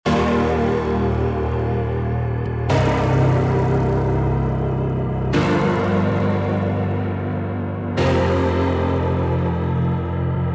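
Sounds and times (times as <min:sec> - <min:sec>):
lofi piano music: 0:00.1 - 0:10.5.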